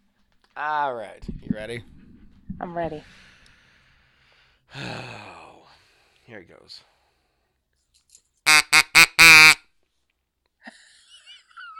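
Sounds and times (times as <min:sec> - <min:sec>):
speech: 0:00.6 - 0:02.0, 0:02.6 - 0:03.3, 0:04.7 - 0:05.4, 0:06.3 - 0:06.9
reedy nasal duck quack blown on a duck call: 0:08.5 - 0:09.6.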